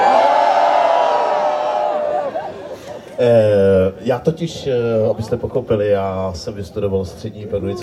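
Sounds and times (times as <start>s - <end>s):
large audience roaring and shouting together: 0.0s - 2.8s
speech: 3.2s - 7.8s.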